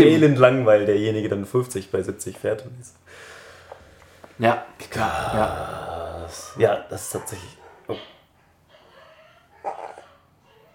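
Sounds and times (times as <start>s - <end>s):
speech: 0.0s - 3.3s, 4.4s - 8.1s
dogs barking: 6.3s - 10.7s.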